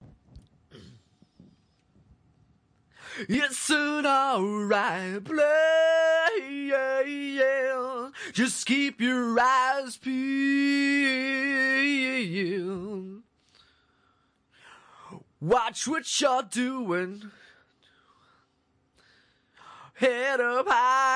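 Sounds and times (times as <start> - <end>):
man singing a cappella at 180 bpm: 3.2 - 13.4, 15.1 - 17.5, 19.8 - 21.1.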